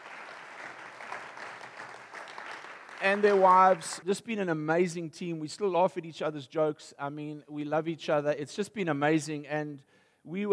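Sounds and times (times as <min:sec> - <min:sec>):
audience applause: 0:00.0 - 0:04.0
speech: 0:03.0 - 0:10.5.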